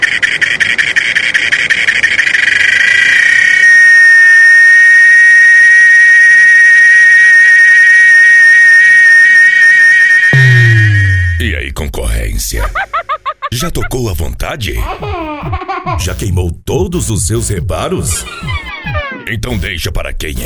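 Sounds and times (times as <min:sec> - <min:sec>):
cicada buzzing: 0:00.0 - 0:10.4
speech: 0:00.3 - 0:02.2, 0:13.6 - 0:18.7, 0:19.3 - 0:20.4
low thump: 0:10.4 - 0:11.5
laughter: 0:12.5 - 0:14.1, 0:14.7 - 0:16.2, 0:18.0 - 0:19.3.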